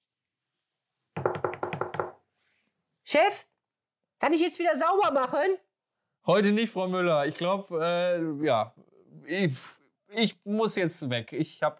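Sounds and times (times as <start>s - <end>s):
rapid steady knocking on a door: 1.2s - 2.2s
speech: 3.1s - 3.5s, 4.2s - 5.6s, 6.2s - 11.7s.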